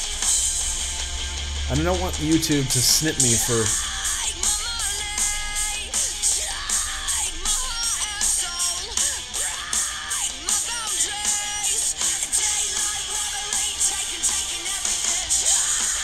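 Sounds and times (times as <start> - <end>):
distorted guitars: 0.0 - 16.0
loud driving punk rock song: 0.0 - 16.0
speech: 1.7 - 3.9
female vocal singing and gritty screaming: 3.8 - 16.0.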